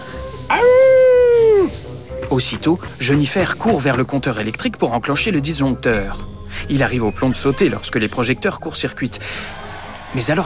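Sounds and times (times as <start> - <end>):
child howling like a werewolf in a performance hall: 0.5 - 1.7
speech: 2.3 - 10.4.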